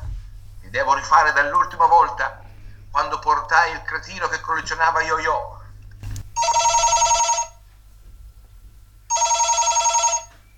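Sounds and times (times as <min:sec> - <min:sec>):
low hum: 0:00.0 - 0:10.5
speech: 0:00.7 - 0:05.6
telephone ringing with electronic trill: 0:06.4 - 0:07.7, 0:09.1 - 0:10.5.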